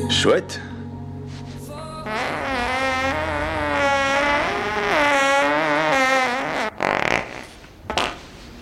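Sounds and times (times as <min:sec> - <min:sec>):
speech: 0:00.1 - 0:00.7
fart: 0:02.1 - 0:08.3.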